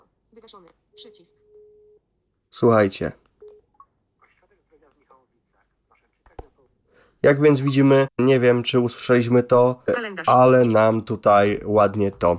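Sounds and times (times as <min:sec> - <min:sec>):
speech: 0:00.3 - 0:01.5, 0:02.5 - 0:03.2, 0:07.2 - 0:12.3
telephone ringing tone: 0:00.9 - 0:02.0.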